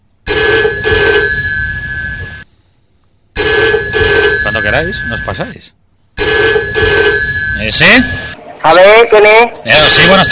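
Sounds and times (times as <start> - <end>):
telephone ringing with a loud electronic tone: 0.3 - 2.4, 3.4 - 5.4, 6.2 - 8.4, 9.7 - 10.3
speech: 4.8 - 6.9, 7.6 - 10.3.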